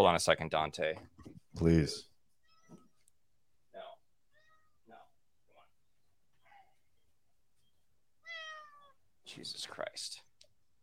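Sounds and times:
speech: 0.0 - 2.1, 9.3 - 10.2
cat meowing: 4.3 - 5.0, 8.2 - 9.0.

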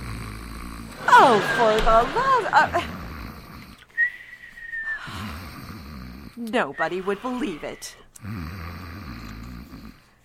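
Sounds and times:
man snoring with deep rattling inhale: 0.0 - 3.9, 5.0 - 6.4, 7.0 - 10.2
laughter: 1.0 - 3.4
speech: 1.2 - 3.0, 6.4 - 8.7
long steady high whistle on the exhale: 3.9 - 5.2.

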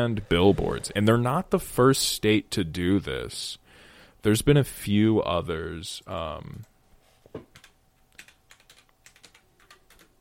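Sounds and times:
speech: 0.0 - 3.6, 4.2 - 6.7
quiet typing on a computer keyboard: 7.5 - 10.1.

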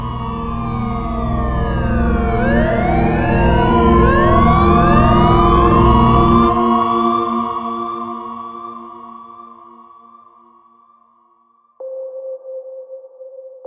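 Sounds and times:
several police sirens wailing: 0.0 - 8.2.

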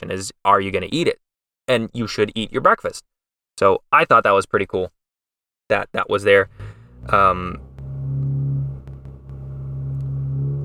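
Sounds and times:
speech: 0.0 - 5.0, 5.7 - 7.7
loud car engine rumbling outside: 6.4 - 10.6.

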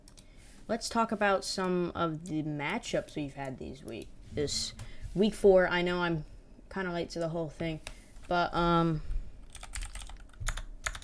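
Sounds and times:
speech: 0.7 - 9.1
typing on a computer keyboard: 9.5 - 11.0.

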